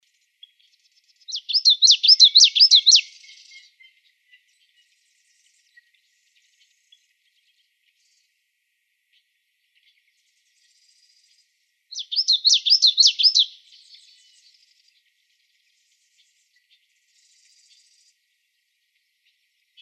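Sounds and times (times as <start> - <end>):
common yellowthroat singing: 1.2 - 7.0, 10.6 - 14.9.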